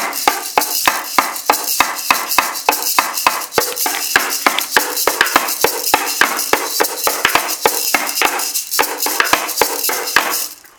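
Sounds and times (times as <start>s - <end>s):
percussive rhythm in a seven-beat cycle: 0.0s - 10.7s.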